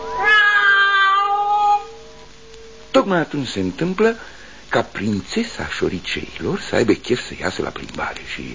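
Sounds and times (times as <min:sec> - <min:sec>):
cat meowing with short rising chirps: 0:00.1 - 0:02.0
speech: 0:03.0 - 0:08.5.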